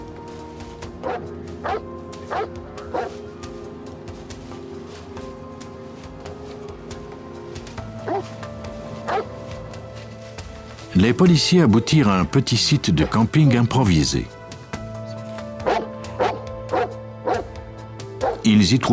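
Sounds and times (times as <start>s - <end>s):
police sniffer dog barking while tracking suspects: 1.0s - 3.2s, 8.0s - 8.3s, 9.1s - 9.3s, 15.6s - 17.6s, 18.2s - 18.4s
speech: 1.1s - 3.3s, 11.0s - 14.4s, 18.5s - 18.9s.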